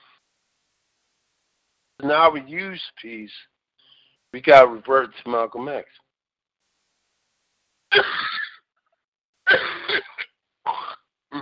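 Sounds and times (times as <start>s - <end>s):
speech: 2.0s - 3.5s, 4.3s - 6.0s
sneezes: 7.9s - 8.6s, 9.5s - 11.4s.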